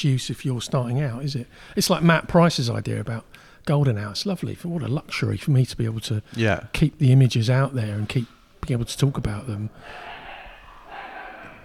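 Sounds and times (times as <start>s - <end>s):
speech: 0.0s - 10.1s
dogs fighting outside: 9.8s - 11.6s.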